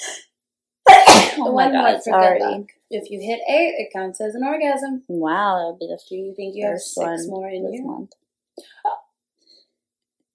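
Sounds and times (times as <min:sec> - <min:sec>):
person sneezing: 0:00.9 - 0:01.5
speech: 0:01.4 - 0:09.0.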